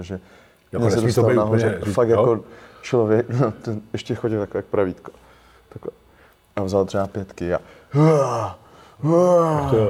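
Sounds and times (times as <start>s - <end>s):
speech: 0.0s - 6.0s, 6.6s - 9.8s
person imitating straining grunts of weightlifting: 8.0s - 9.8s.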